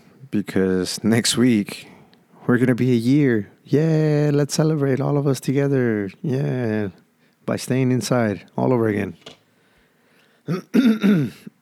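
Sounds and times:
speech: 0.3 - 9.4, 10.5 - 11.5
person clearing throat with something stuck in the throat: 10.5 - 11.6.

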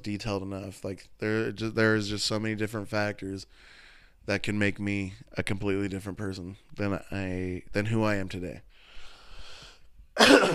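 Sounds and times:
speech: 0.0 - 8.7, 10.2 - 10.5
breathing: 3.5 - 4.2, 8.7 - 10.0
person coughing into microphone: 10.2 - 10.5.

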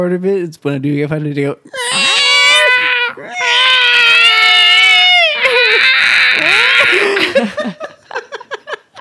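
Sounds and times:
speech: 0.0 - 2.1
cats yowling while mating: 1.7 - 7.2
laughter: 6.4 - 9.0.

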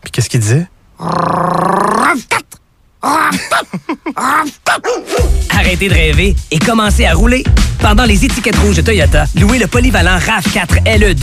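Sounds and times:
speech: 0.2 - 2.3, 3.7 - 11.2
dog barking and yipping: 4.7 - 5.4.

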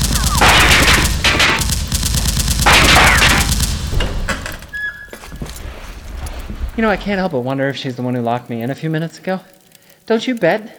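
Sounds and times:
automatic gunfire in a burning building: 0.0 - 4.3
speech: 6.8 - 10.7.

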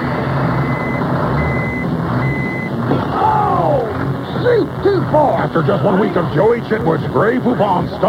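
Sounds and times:
big rig truck engine rumble: 0.0 - 8.0
big rig truck reversing beeps: 0.6 - 2.8
speech: 4.6 - 8.0.

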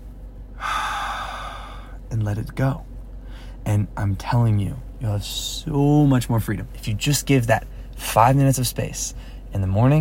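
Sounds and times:
deep breath inhaled during a breathing and relaxation exercise: 0.6 - 2.0
speech: 2.1 - 2.9, 3.6 - 9.9.

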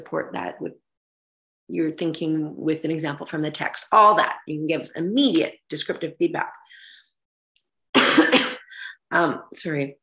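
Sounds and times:
speech: 0.0 - 0.9, 1.7 - 7.0, 9.1 - 10.0
person coughing: 8.0 - 8.9.

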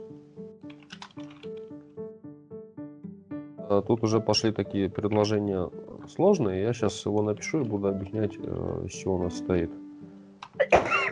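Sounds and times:
speech: 3.7 - 9.8
person sneezing: 10.6 - 11.1.

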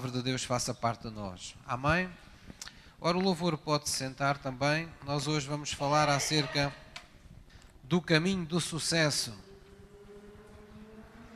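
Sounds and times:
speech: 0.0 - 6.8, 7.9 - 9.4
motorcycle engine passing: 9.0 - 11.3.

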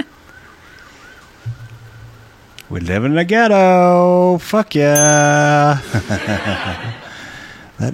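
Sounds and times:
faint siren wailing: 0.0 - 2.8
low rumble: 1.5 - 2.7
speech: 2.7 - 7.0
laughter: 5.8 - 7.3.

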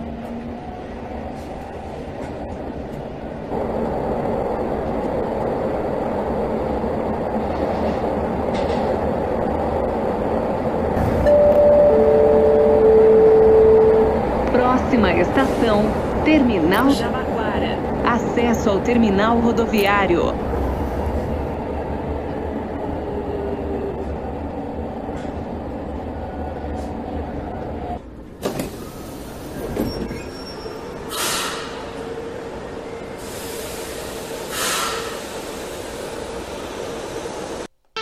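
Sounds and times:
prototype metro train rumbling during testing: 0.0 - 37.7
speech: 16.3 - 17.1, 18.6 - 20.4
high thin metro train wheel squeal: 29.4 - 31.9.

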